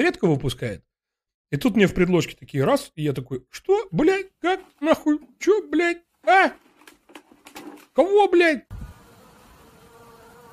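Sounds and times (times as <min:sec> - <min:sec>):
speech: 0:00.0 - 0:00.9, 0:01.5 - 0:06.6, 0:07.6 - 0:08.8
swarm of honeybees buzzing: 0:08.7 - 0:10.5.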